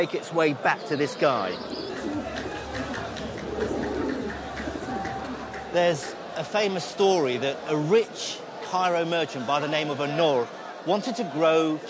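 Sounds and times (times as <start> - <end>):
speech: 0.0 - 1.9, 5.7 - 11.8
faint chatter: 0.0 - 11.8
other bird sounds: 0.6 - 6.1
carrier pigeon cooing: 1.6 - 5.5.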